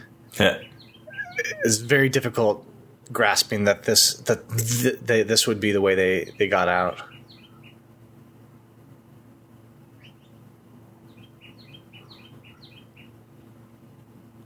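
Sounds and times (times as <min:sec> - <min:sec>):
steady low hum: 0:00.0 - 0:14.4
speech: 0:00.4 - 0:00.7, 0:01.4 - 0:07.1
birds chirping and singing: 0:00.4 - 0:01.9, 0:06.0 - 0:07.9, 0:09.9 - 0:13.2.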